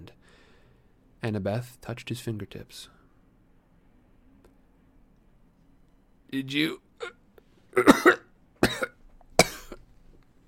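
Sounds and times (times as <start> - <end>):
speech: 1.2 - 3.0, 6.3 - 7.2, 7.8 - 8.2
person coughing harshly: 7.8 - 9.8.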